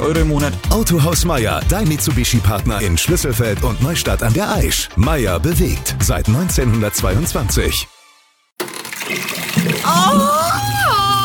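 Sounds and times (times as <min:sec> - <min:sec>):
speech: 0:00.0 - 0:07.9, 0:09.1 - 0:10.7
water rushing and splashing from an overflowing sink and toilet: 0:08.8 - 0:11.2.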